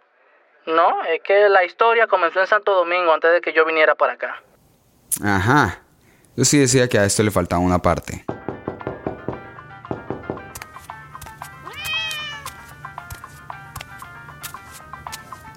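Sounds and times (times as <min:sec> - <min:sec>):
speech: 0:00.7 - 0:04.5, 0:05.1 - 0:05.8, 0:06.4 - 0:08.3
knocks and thumps: 0:08.3 - 0:14.0
cat meowing: 0:11.6 - 0:12.7.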